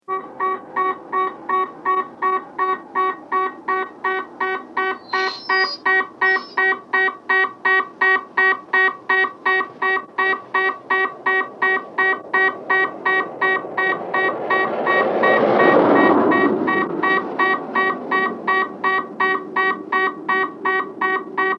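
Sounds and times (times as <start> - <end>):
emergency vehicle car approaching: 0.0 - 8.1, 8.7 - 21.5
police radar beep: 0.1 - 21.5.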